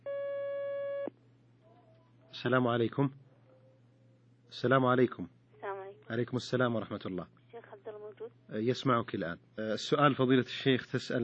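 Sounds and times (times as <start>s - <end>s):
telephone line tone as an incoming call is taken: 0.0s - 1.1s
speech: 2.4s - 3.2s, 4.5s - 5.4s, 6.1s - 7.4s, 8.5s - 11.2s.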